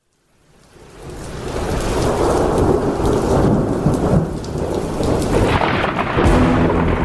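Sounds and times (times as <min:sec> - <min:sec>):
heavy hissing rain: 0:00.0 - 0:07.0
deep thunder rumbling: 0:02.1 - 0:07.0.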